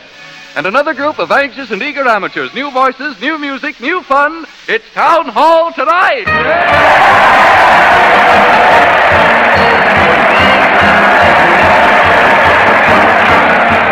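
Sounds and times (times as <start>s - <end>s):
speech: 0.6s - 10.3s
large crowd cheering with whoops and shouts: 6.3s - 13.9s.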